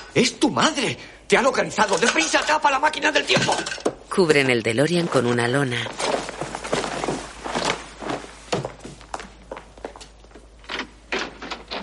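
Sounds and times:
speech: 0:00.2 - 0:06.1
footsteps in a film scene: 0:05.0 - 0:10.5.

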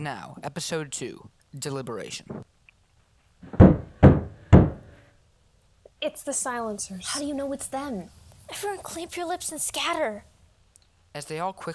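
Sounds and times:
speech: 0:00.0 - 0:02.5, 0:06.0 - 0:10.3, 0:11.1 - 0:11.7
firm knocks on a door from outside: 0:03.4 - 0:05.0.

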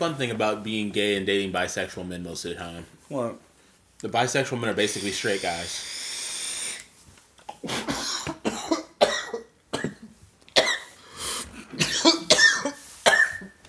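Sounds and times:
speech: 0:00.0 - 0:06.0, 0:07.6 - 0:08.0
person clearing throat: 0:07.6 - 0:10.9, 0:11.7 - 0:13.6
person coughing in a rough hacking fit: 0:07.6 - 0:10.9, 0:11.7 - 0:13.6.

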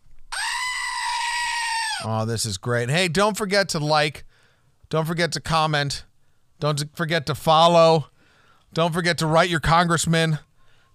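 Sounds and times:
goat screaming: 0:00.3 - 0:02.1
speech: 0:02.0 - 0:04.3, 0:04.9 - 0:08.1, 0:08.7 - 0:10.5.

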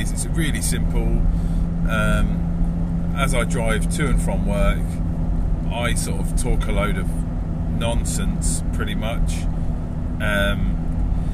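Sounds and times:
speech: 0:00.0 - 0:02.5, 0:03.2 - 0:05.0, 0:05.7 - 0:07.2, 0:07.8 - 0:09.6, 0:10.2 - 0:10.8
car interior road noise while driving in the rain: 0:00.0 - 0:11.3.

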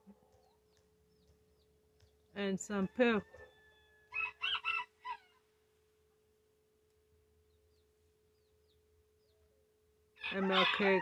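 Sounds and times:
faint steady hum: 0:00.0 - 0:10.9
speech: 0:02.4 - 0:03.4, 0:10.8 - 0:10.9
rooster crowing: 0:03.2 - 0:05.4, 0:10.2 - 0:10.9.

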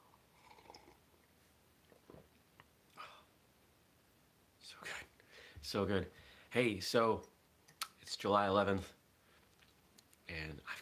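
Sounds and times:
person slurping hot coffee: 0:00.4 - 0:01.0
speech: 0:05.6 - 0:07.3, 0:08.2 - 0:09.0.

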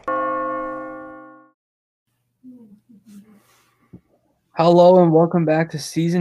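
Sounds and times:
clock chime striking twelve: 0:00.0 - 0:01.5
speech: 0:04.6 - 0:06.2.

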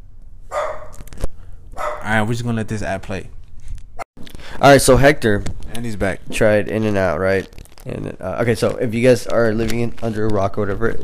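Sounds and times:
dog barking outside the room: 0:00.5 - 0:01.0, 0:01.8 - 0:02.1
speech: 0:02.1 - 0:03.4, 0:04.6 - 0:11.0.

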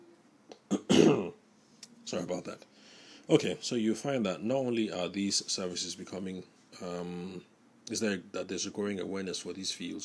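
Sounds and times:
throat-clearing and short harsh cough: 0:00.7 - 0:01.4
speech: 0:02.1 - 0:10.0.

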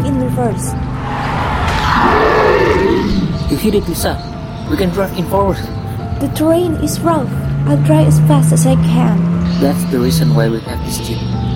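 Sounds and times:
speech: 0:00.4 - 0:01.1, 0:03.5 - 0:11.5
monster roaring behind a jeep: 0:01.6 - 0:03.5.

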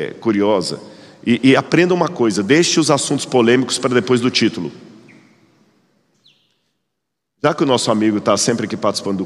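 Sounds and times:
speech: 0:00.0 - 0:04.9, 0:07.4 - 0:09.2
small bird chirping: 0:05.0 - 0:06.8.

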